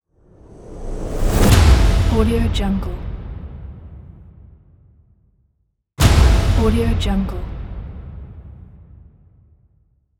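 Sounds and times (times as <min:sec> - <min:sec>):
cinematic whoosh hit: 0:00.2 - 0:04.7, 0:06.0 - 0:09.4.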